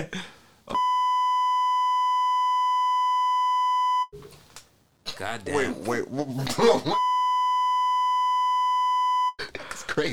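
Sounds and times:
long electronic beep from a pressed button: 0.8s - 4.1s, 7.0s - 9.3s
speech: 5.2s - 7.1s, 10.0s - 10.1s.

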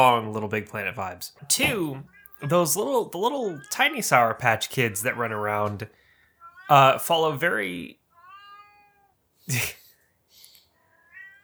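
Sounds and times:
speech: 0.0s - 6.0s, 6.7s - 8.0s, 9.5s - 9.8s
cat meowing: 1.4s - 5.6s, 6.4s - 9.7s, 10.8s - 11.4s.

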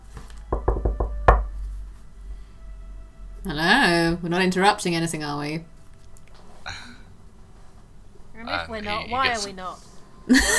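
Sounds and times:
knocking on a wooden door in a room with a lit hearth: 0.5s - 1.6s
speech: 3.4s - 5.7s, 8.7s - 10.5s.

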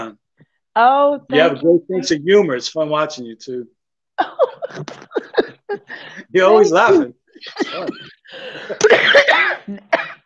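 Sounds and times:
speech: 0.0s - 0.2s, 0.8s - 10.2s
laughter: 4.2s - 9.3s
harsh raspy coughing: 7.5s - 10.2s.

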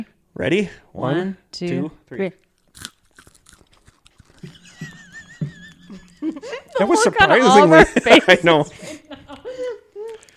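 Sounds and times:
speech: 0.0s - 2.9s, 6.3s - 9.0s
dry crunchy morsel being bitten and chewed: 2.4s - 5.0s
laughter: 4.4s - 10.2s.

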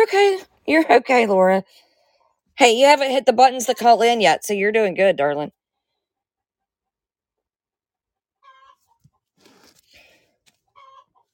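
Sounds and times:
speech: 0.0s - 1.8s, 2.6s - 5.6s
hen cackling: 8.4s - 9.0s, 10.7s - 11.3s.

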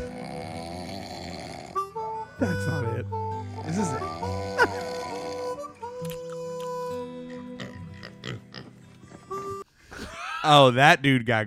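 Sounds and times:
pig grunting and squealing in a played video: 0.0s - 2.0s, 3.5s - 5.7s, 7.6s - 8.7s
speech: 2.4s - 5.0s, 10.4s - 11.4s.

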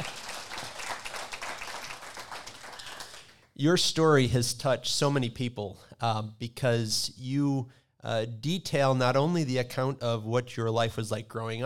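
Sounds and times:
audience applause: 0.0s - 3.3s
speech: 3.6s - 11.6s.

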